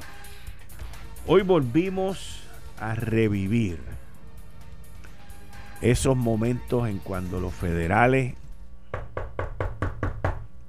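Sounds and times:
speech: 1.2 - 4.0, 5.8 - 8.4
firm knocking on a door: 8.9 - 10.5.

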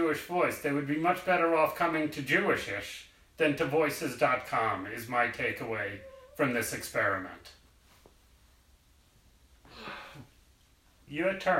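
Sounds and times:
speech: 0.1 - 7.6, 11.1 - 11.5
person yawning: 9.7 - 10.3.

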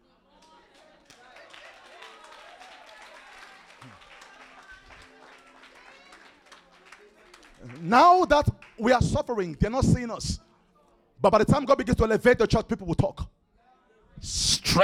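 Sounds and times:
church audience clapping for the preacher: 0.4 - 9.8
speech: 7.6 - 10.5, 11.2 - 13.3.

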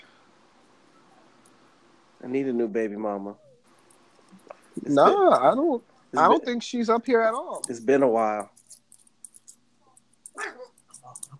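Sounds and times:
speech: 2.2 - 3.5, 4.8 - 8.6
dog barking hoarsely: 10.4 - 10.7.

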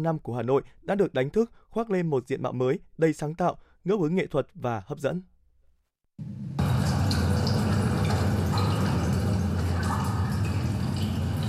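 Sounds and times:
speech: 0.0 - 5.3, 6.2 - 6.6
natural running water rushing: 6.6 - 11.4.

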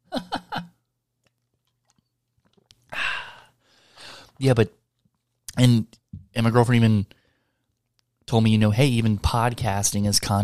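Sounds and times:
person gulping soda: 1.2 - 3.0
breathy refreshed exhale: 2.9 - 4.4
speech: 4.4 - 4.8, 5.6 - 7.2, 8.3 - 10.4.

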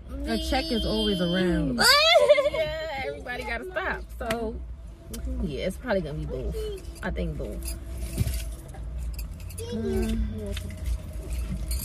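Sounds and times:
low rumbling background: 0.0 - 11.8
speech: 0.3 - 8.0, 9.6 - 11.0
metal keys jingling and rattling: 6.5 - 11.8.

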